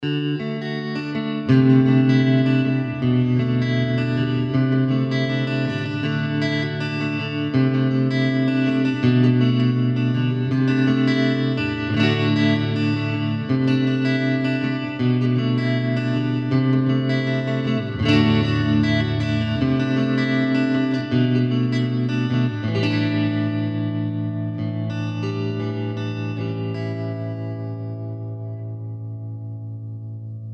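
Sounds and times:
Amplitube Max preset of Fender Vibro King guitar amplifier tone: 0:00.0 - 0:30.5.

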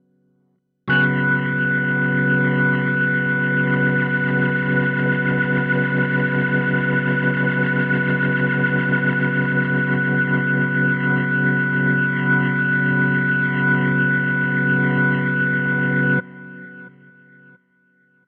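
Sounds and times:
Korg SV 2 organ through Hammond amp rotary speaker: 0:00.9 - 0:17.0.

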